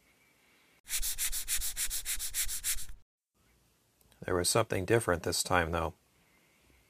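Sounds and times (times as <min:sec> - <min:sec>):
rapid raspy scratching: 0:00.9 - 0:03.0
speech: 0:04.2 - 0:06.0.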